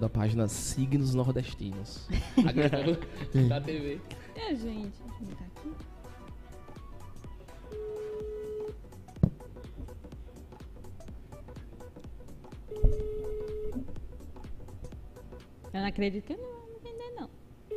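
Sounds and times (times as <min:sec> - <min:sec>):
speech: 0:00.0 - 0:05.9, 0:15.8 - 0:16.5
laughter: 0:02.1 - 0:03.7
outgoing phone call ringback tone: 0:07.5 - 0:09.0, 0:12.7 - 0:14.0.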